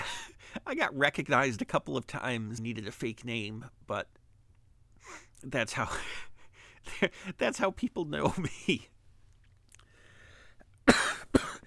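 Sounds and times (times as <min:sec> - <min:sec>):
speech: 0:00.7 - 0:04.2, 0:05.0 - 0:08.9
man coughing: 0:10.8 - 0:11.6.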